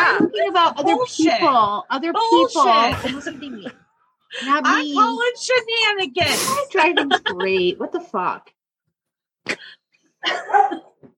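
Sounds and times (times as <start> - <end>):
speech: 0.5 - 8.6, 9.4 - 10.9
laughter: 2.7 - 4.6, 6.2 - 8.0, 10.2 - 11.0
dog barking: 10.3 - 10.9.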